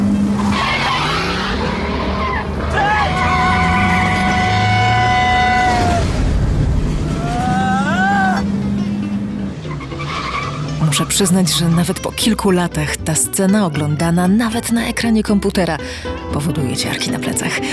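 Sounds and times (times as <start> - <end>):
car tires screeching across a railway crossing: 0.0 - 13.1
car roaring across a railway crossing: 0.0 - 13.2
heavy continuous rumbling of a speeding train: 0.6 - 16.0
loud sustained horn-like blare of a speeding train: 2.8 - 5.9
speech: 11.2 - 17.7.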